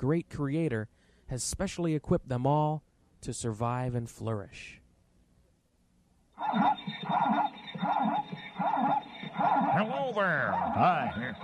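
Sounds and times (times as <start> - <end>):
speech: 0.0 - 4.8, 6.4 - 8.9, 9.5 - 11.4
zebra calling with yelping barks: 6.4 - 11.4.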